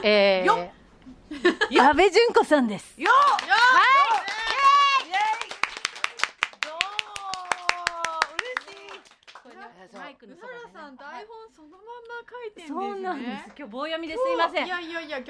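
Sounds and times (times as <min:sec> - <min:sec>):
speech: 0:00.0 - 0:04.0, 0:10.2 - 0:15.2
laughter: 0:01.3 - 0:01.9
small group applauding a guest: 0:03.0 - 0:10.2.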